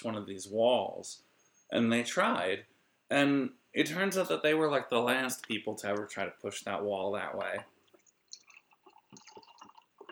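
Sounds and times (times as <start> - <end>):
speech: 0.0 - 7.7
whiskey being poured into a glass: 7.4 - 10.0.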